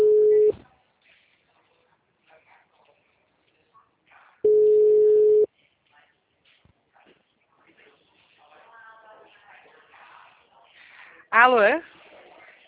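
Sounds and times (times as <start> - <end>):
ringback tone of an outgoing telephone call: 0.0 - 0.5, 4.5 - 5.5.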